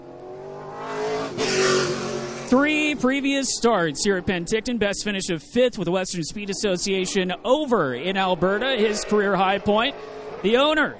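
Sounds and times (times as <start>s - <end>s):
race car engine revving to heat its tires before a race: 0.0s - 4.6s, 6.4s - 10.8s
speech: 2.5s - 10.9s.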